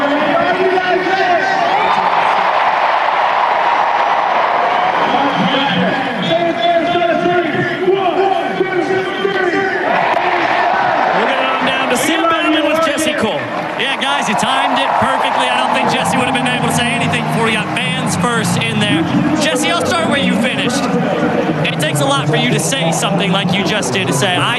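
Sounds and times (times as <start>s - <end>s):
full-capacity stadium crowd cheering in Eugene, Oregon: 0.0s - 24.5s
booming amplified voice echoing: 11.2s - 24.5s.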